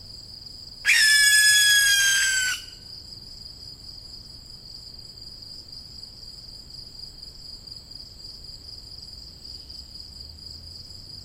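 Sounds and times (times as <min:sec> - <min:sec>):
steady high insect drone: 0:00.0 - 0:11.2
young barn owl screech: 0:00.9 - 0:02.8.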